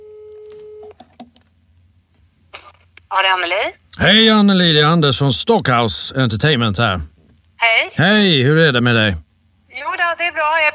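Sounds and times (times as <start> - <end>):
steady electronic phone tone: 0.0 - 1.0
speech: 3.1 - 9.2, 9.8 - 10.7.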